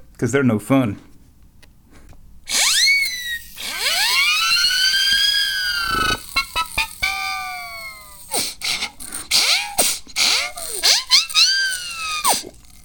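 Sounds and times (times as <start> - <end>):
speech: 0.2 - 1.1
siren whistle blown: 2.5 - 8.4, 9.3 - 12.5.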